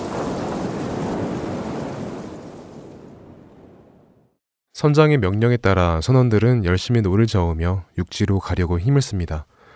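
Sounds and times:
rough sea waves in a storm at sea: 0.0s - 4.2s
gusting wind in a storm at sea: 0.0s - 4.4s
speech: 4.8s - 9.6s.

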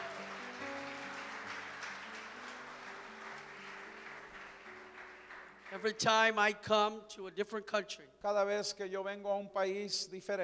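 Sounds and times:
large crowd applause: 0.0s - 6.1s
sustained keyboard chords: 0.2s - 5.7s
speech: 5.7s - 10.4s.

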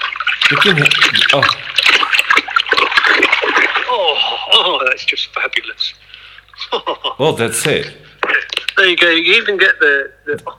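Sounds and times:
warm water splashing and sloshing in a filled bucket: 0.0s - 4.7s
speech: 0.5s - 1.6s, 4.6s - 6.1s, 6.7s - 8.1s, 8.8s - 10.5s.

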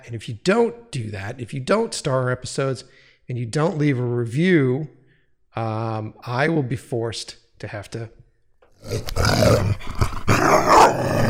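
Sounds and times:
speech: 0.0s - 5.0s, 5.6s - 8.2s, 8.8s - 10.1s
dog growling: 8.8s - 11.2s
dog barking: 10.4s - 11.1s.

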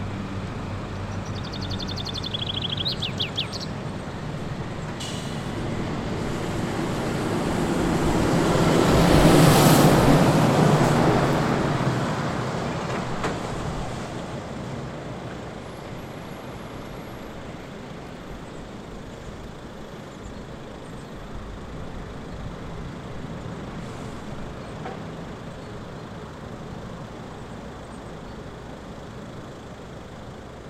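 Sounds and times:
steady motorway traffic roar at a service area: 0.0s - 30.6s
vehicle passing loudly: 5.5s - 14.4s.

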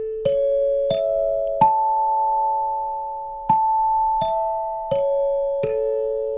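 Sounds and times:
doorbell-style ding-dong chime melody: 0.0s - 6.3s.

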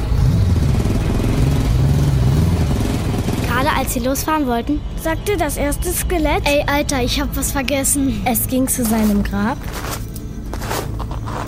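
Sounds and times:
heavy motorcycle engine revving: 0.0s - 5.2s
speech: 3.9s - 10.1s.

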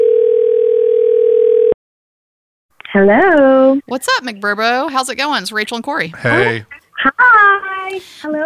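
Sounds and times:
telephone dial tone of an outgoing call: 0.0s - 1.8s
speech: 3.0s - 8.4s.

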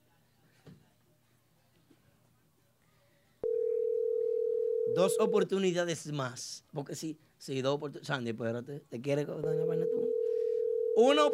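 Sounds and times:
faint noise: 0.0s - 11.3s
telephone tone on an outgoing call: 3.4s - 5.5s, 9.4s - 11.3s
speech: 5.0s - 10.0s, 11.0s - 11.3s.

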